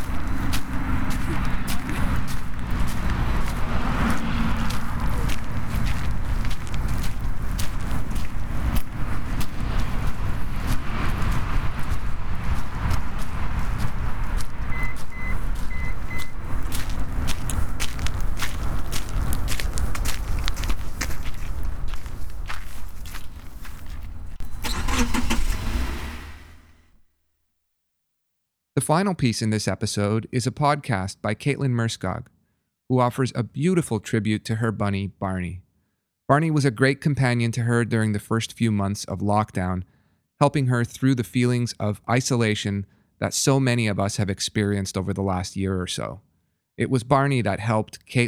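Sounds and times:
footsteps walking toward a car: 0.0s - 26.8s
steady rumble: 0.0s - 26.8s
car engine starting: 0.1s - 17.6s, 20.7s - 26.9s
short beeps: 14.7s - 16.4s
speech: 28.9s - 35.6s, 36.3s - 48.2s.

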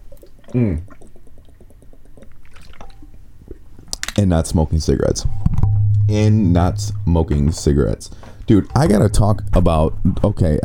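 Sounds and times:
gulping water into the microphone: 0.0s - 3.7s
speech: 0.5s - 0.9s, 4.2s - 5.4s, 6.1s - 10.6s.

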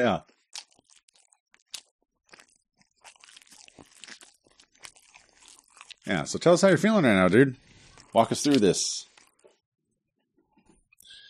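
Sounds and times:
speech: 0.0s - 0.4s, 6.1s - 9.1s
wet chewing and crunching of chicken: 0.0s - 6.6s, 7.7s - 9.6s
lip smacking while eating chicken: 0.4s - 6.1s.

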